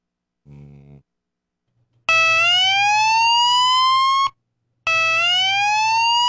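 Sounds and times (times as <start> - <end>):
shrill whistle-like warning alarm tone: 2.1 - 4.3, 4.9 - 6.2.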